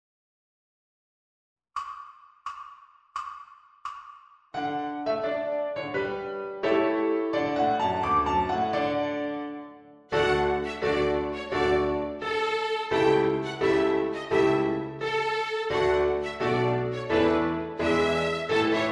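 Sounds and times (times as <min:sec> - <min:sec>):
piano in a backing track: 0:04.6 - 0:18.9
violin in a backing track: 0:05.8 - 0:18.9.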